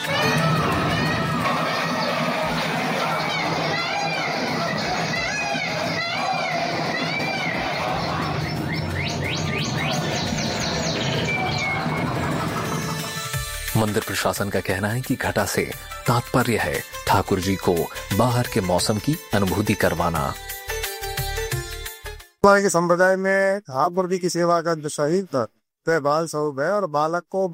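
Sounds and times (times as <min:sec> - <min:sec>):
steady murmur of a crowd: 0:00.1 - 0:13.0
dense chorus of birds chirping and twittering in a temple: 0:00.1 - 0:13.3
speech: 0:13.8 - 0:20.5, 0:22.4 - 0:27.5.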